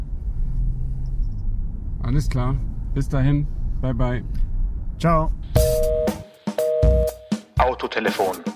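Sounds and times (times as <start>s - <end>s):
car interior road rumble: 0.0s - 5.6s
car engine drone heard from inside the cabin: 0.0s - 6.0s
speech: 2.1s - 5.6s, 7.8s - 8.5s.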